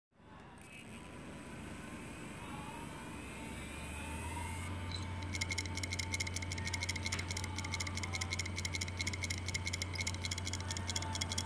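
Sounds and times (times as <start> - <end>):
damaged hard drive: 0.8 - 11.4.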